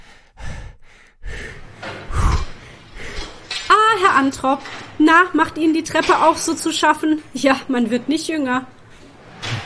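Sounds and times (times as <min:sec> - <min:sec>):
gasping breaths after holding breath: 0:00.0 - 0:03.6
speech: 0:04.2 - 0:08.8.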